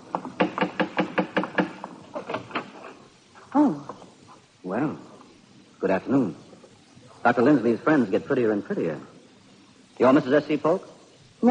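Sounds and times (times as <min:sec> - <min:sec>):
knocking on a wooden door: 0:00.1 - 0:02.7
speech: 0:04.7 - 0:05.1, 0:05.8 - 0:06.4, 0:07.2 - 0:09.1, 0:10.0 - 0:11.4.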